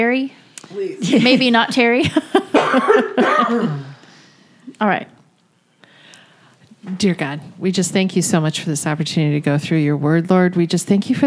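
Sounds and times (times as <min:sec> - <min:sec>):
speech: 0:00.0 - 0:03.9, 0:04.7 - 0:05.2, 0:06.8 - 0:11.2
harsh raspy coughs: 0:02.5 - 0:04.0.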